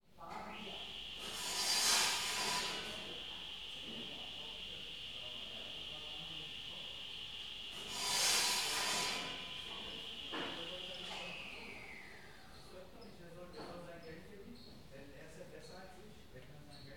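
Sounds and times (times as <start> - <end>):
mid distant voices in a hardware store: 0.1 - 16.2
circular saw in a hardware store wood shop area in Berlin: 0.4 - 12.7.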